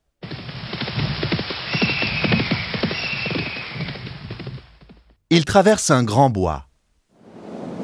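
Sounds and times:
horse hooves clip-clopping on a journey on horseback: 0.2s - 5.2s
speech: 5.3s - 6.7s.

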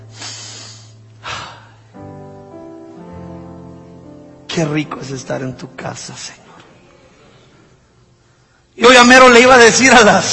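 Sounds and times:
person taking deep breaths in a church: 0.0s - 1.9s
speech: 4.6s - 6.4s, 8.9s - 10.3s.

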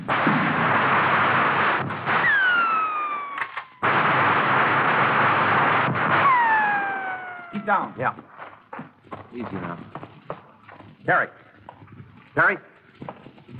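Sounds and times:
shotgun fire during a siege: 0.0s - 8.9s
falling whistling tones: 2.2s - 3.9s, 6.2s - 7.9s
speech: 7.7s - 8.4s, 9.3s - 10.0s, 11.1s - 11.4s, 12.4s - 12.7s.

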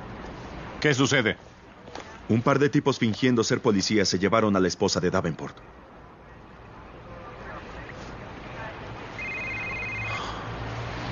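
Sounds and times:
speech: 0.8s - 1.5s, 2.3s - 5.8s
telephone ringing with a brief electronic trill: 9.2s - 10.4s.

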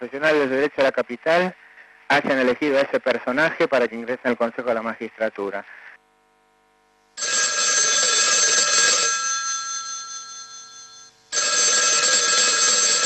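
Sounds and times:
speech: 0.0s - 5.8s
telephone bells ringing: 7.2s - 13.0s.

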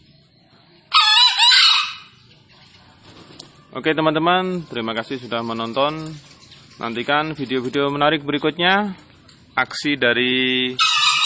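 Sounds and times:
wild green junglefowl crowing: 0.9s - 2.2s, 10.6s - 11.2s
speech: 3.7s - 10.9s.

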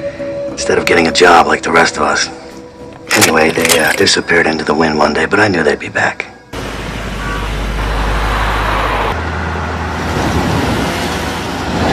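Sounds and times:
speech: 0.6s - 2.4s, 3.1s - 6.3s
Porsche 911 driving past on a road: 6.6s - 11.9s.

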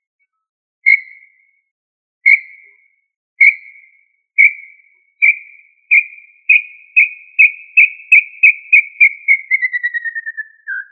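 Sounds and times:
tinamou call of sharp high whistles: 2.3s - 2.6s, 3.4s - 3.8s, 4.4s - 10.8s.

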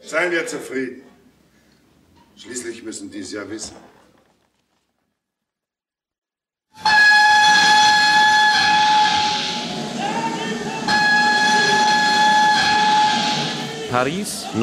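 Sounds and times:
speech: 0.1s - 1.1s, 2.4s - 4.0s, 13.9s - 14.6s
steam train hissing at a railway station in Paris: 6.8s - 14.6s.

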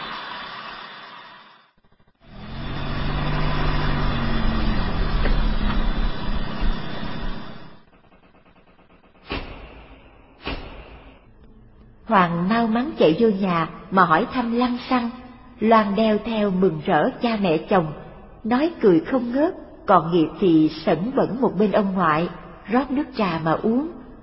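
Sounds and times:
car engines rumbling while pulling into a yard and parking: 2.3s - 7.8s
sharp thuds: 8.3s - 11.3s
speech: 12.1s - 24.0s.

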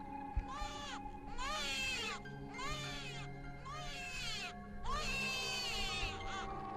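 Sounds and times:
weak baby crying on a small raft in cold water: 0.4s - 6.7s.

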